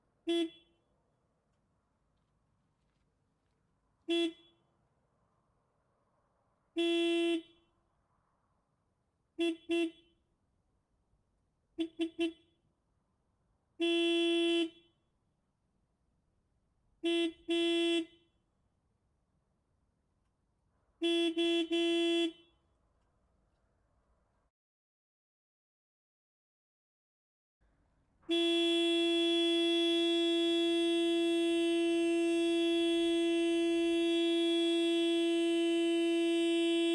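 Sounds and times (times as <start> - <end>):
Case Puma 180 tractor horn: 0.2 - 0.8, 4.0 - 4.6, 6.7 - 7.6, 9.4 - 10.2, 11.8 - 12.5, 13.8 - 15.0, 17.0 - 18.3, 21.0 - 22.6, 28.2 - 36.9.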